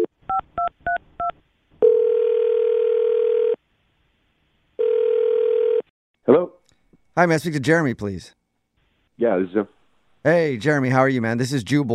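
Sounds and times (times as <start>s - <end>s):
electronic phone ringback tone: 1.8s - 3.6s, 4.8s - 5.9s
speech: 7.2s - 8.4s, 9.2s - 11.9s.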